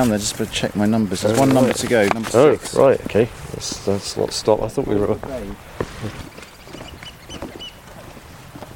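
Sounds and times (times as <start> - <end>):
speech: 0.0 - 6.3
outdoor noise: 0.0 - 8.7
oystercatcher piping calls: 6.0 - 7.9.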